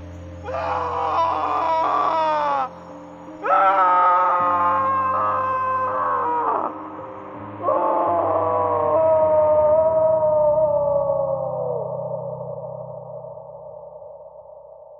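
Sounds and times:
steady low drone: 0:00.0 - 0:14.9
anguished wailing screams: 0:00.4 - 0:02.8, 0:03.4 - 0:07.0, 0:07.6 - 0:11.9.

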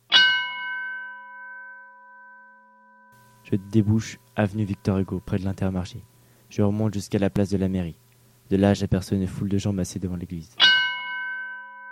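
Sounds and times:
bell tolling in a quiet town: 0:00.1 - 0:06.1, 0:10.6 - 0:11.9
speech: 0:03.4 - 0:10.7.

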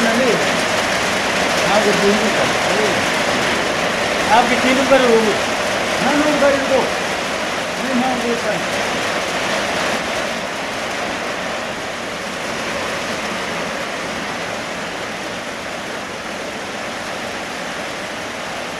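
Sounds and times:
hail and rain pouring down: 0:00.0 - 0:18.7
voices: 0:01.6 - 0:07.0, 0:07.8 - 0:08.8
speech: 0:01.8 - 0:02.4, 0:04.3 - 0:07.0, 0:07.9 - 0:09.0.

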